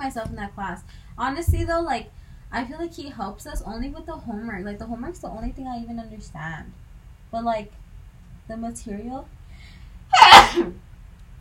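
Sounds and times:
speech: 0:00.0 - 0:07.8, 0:08.5 - 0:09.4, 0:10.1 - 0:11.3
person sneezing: 0:10.1 - 0:10.8.

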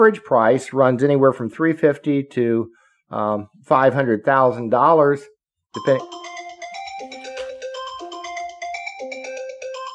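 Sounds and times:
speech: 0:00.0 - 0:06.3
phone ringtone playing a bright electronic melody: 0:05.8 - 0:09.9.

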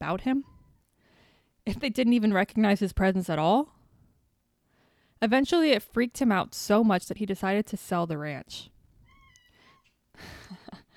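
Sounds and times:
speech: 0:00.0 - 0:00.5, 0:01.6 - 0:03.8, 0:05.2 - 0:08.7, 0:10.2 - 0:10.9
domestic cat meowing: 0:09.0 - 0:10.0.

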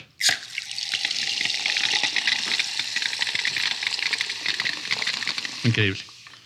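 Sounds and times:
liquid pouring into a glass: 0:00.2 - 0:06.4
speech: 0:05.6 - 0:06.1.

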